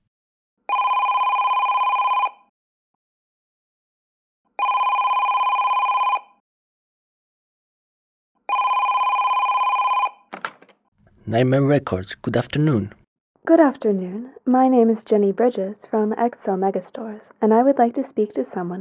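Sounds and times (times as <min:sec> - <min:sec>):
international telephone call ring tones: 0:00.7 - 0:02.5, 0:04.6 - 0:06.4, 0:08.5 - 0:10.3
speech: 0:11.3 - 0:18.7.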